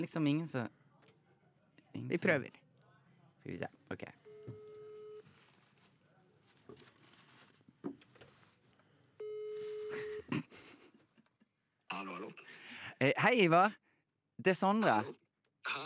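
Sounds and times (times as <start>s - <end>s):
speech: 0.0s - 0.8s, 2.0s - 2.6s, 3.4s - 4.6s, 13.0s - 13.8s, 14.4s - 15.8s
electronic ringback tones over a phone on speaker: 4.3s - 5.3s, 9.2s - 10.3s
breathing: 12.4s - 13.0s.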